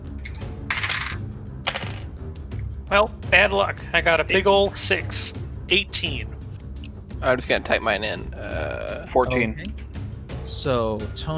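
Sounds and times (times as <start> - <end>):
dice rolling on a table: 0.7 - 2.1
speech: 2.9 - 6.3, 7.2 - 9.8, 10.4 - 11.3.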